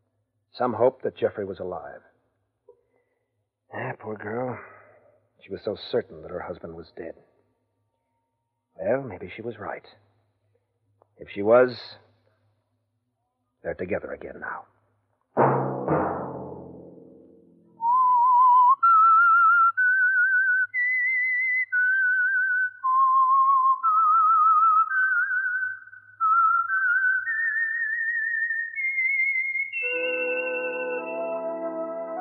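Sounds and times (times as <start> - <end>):
speech: 0.6 - 2.1, 3.7 - 4.7, 5.4 - 7.3, 8.8 - 10.0, 11.2 - 12.0, 13.6 - 14.7
orchestral chord: 15.4 - 17.8, 29.9 - 32.1
low musical chord: 15.8 - 17.8
solo whistled theme melody: 17.7 - 32.1.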